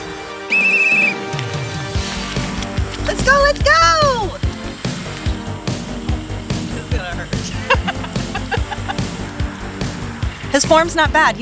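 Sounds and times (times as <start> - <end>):
shrill whistle blast to start a race: 0.4 - 1.3
movement noise: 1.2 - 10.7
speech: 3.3 - 4.0, 10.6 - 11.4
laughter: 6.6 - 9.5.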